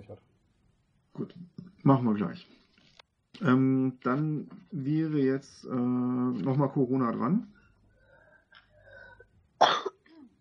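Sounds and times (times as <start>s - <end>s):
speech: 1.2s - 2.6s, 3.4s - 7.6s
soft rasping breath: 7.6s - 9.3s
single loud harsh cough: 9.6s - 10.3s.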